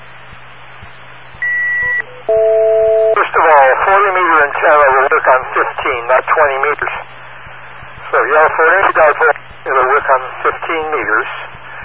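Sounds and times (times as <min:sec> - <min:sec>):
faint low hum: 0:00.0 - 0:11.8
high call-in line electronic beep: 0:01.4 - 0:03.2
speech: 0:03.4 - 0:07.2, 0:08.2 - 0:11.6.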